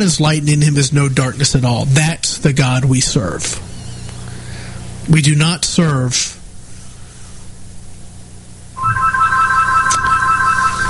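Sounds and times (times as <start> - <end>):
speech: 0.0 - 3.8, 5.1 - 6.4
low hum: 0.0 - 10.8
phone ringtone ringing: 8.8 - 10.8.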